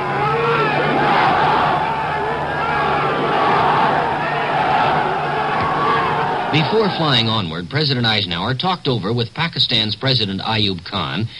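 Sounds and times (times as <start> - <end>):
vast crowd roaring and cheering: 0.0 - 7.4
speech: 6.6 - 11.3.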